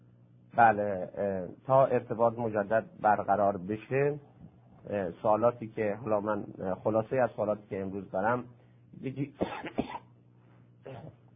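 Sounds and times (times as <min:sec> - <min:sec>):
speech: 0:00.6 - 0:10.1
host clearing throat: 0:09.3 - 0:10.1, 0:10.8 - 0:11.3
host coughing: 0:09.4 - 0:10.1, 0:10.8 - 0:11.2.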